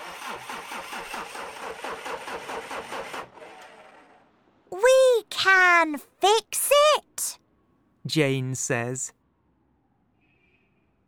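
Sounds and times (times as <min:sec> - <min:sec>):
car engine cranking, straining to start without catching: 0:00.0 - 0:03.3
speech: 0:05.4 - 0:06.7, 0:08.1 - 0:09.2.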